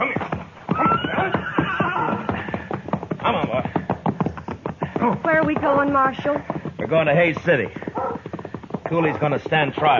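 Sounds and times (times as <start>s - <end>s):
gray horse whinnying: 0.0s - 3.4s
hooves clip-clopping: 0.0s - 9.9s
speech: 5.6s - 7.8s, 8.9s - 9.9s.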